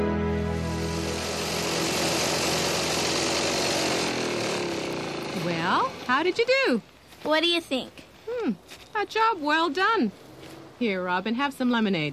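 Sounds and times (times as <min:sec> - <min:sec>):
lawn mower engine running while mowing a small lawn: 0:00.1 - 0:06.6
speech: 0:06.2 - 0:10.2, 0:10.8 - 0:12.1.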